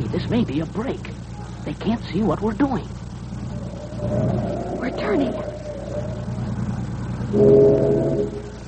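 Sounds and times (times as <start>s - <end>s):
continuous low engine rumble: 0.0s - 8.6s
speech: 0.1s - 3.0s, 4.0s - 6.2s, 7.3s - 8.4s
deep steady steamship whistle blowing: 7.3s - 8.6s.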